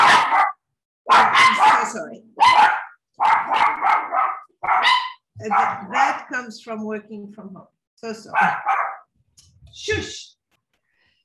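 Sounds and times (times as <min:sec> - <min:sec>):
dog barking at doorbell: 0:00.0 - 0:06.3, 0:08.3 - 0:09.1
speech: 0:01.9 - 0:02.7, 0:05.4 - 0:08.8, 0:09.8 - 0:10.4.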